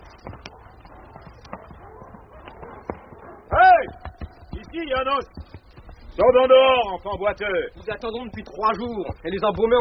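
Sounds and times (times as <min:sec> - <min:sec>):
hooves of horses clip-clopping to a stop in front of a tavern: 0:00.0 - 0:09.7
speech: 0:04.8 - 0:05.5, 0:06.2 - 0:09.7.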